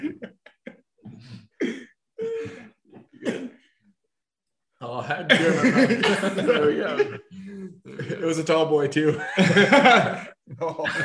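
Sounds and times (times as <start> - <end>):
laughter: 0.0 - 0.8, 5.1 - 11.0
person coughing: 1.1 - 3.6
speech: 5.0 - 11.0.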